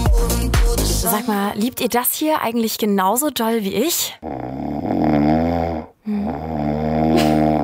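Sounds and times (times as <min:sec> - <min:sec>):
speech: 0:01.1 - 0:07.3
person snoring loudly with long rasping breaths: 0:04.2 - 0:07.6.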